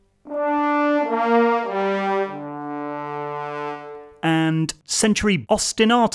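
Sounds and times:
sampled French horn brass ensemble playing sustained chords: 0.0 - 4.4
speech: 4.2 - 6.1.

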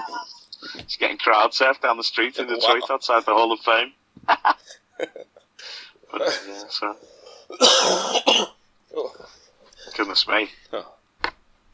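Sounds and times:
speech: 0.9 - 11.0
person with an evening cough coughing: 6.2 - 6.7, 7.5 - 8.6.

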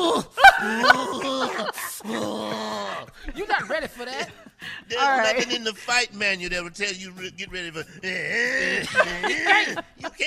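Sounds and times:
man imitating a growl: 0.0 - 3.2, 8.0 - 9.7
laughter: 0.4 - 10.2
speech: 3.4 - 10.2.

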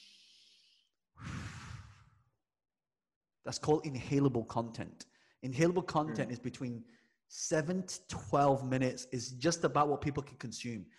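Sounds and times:
person breathing in deeply: 1.2 - 2.1
speech: 3.4 - 10.9.

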